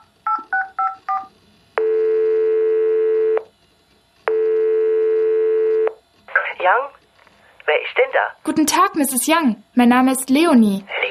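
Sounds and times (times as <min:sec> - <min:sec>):
telephone ringing tone: 0:00.3 - 0:03.5, 0:04.3 - 0:05.9
speech: 0:08.2 - 0:11.0.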